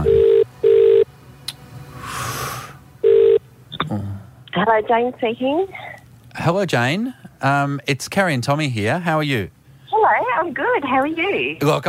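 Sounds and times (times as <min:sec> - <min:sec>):
soft hiss of telephone line noise: 0:00.0 - 0:11.8
sustained electronic telephone keypad dialing tones: 0:03.0 - 0:03.4
speech: 0:04.6 - 0:05.8, 0:06.4 - 0:11.8.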